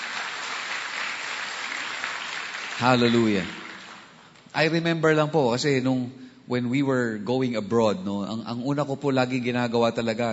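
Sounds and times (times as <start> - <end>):
congregation applauding during a church service: 0.0 - 4.3
speech: 2.8 - 3.6, 4.5 - 10.3.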